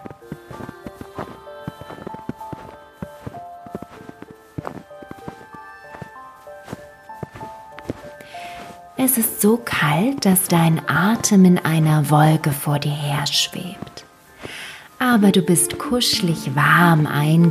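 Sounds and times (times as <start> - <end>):
footsteps crunching through snow at a steady walking pace in a winter landscape: 0.0 - 17.5
gentle sustained musical tone: 0.0 - 17.5
speech: 9.0 - 13.8, 15.1 - 17.5.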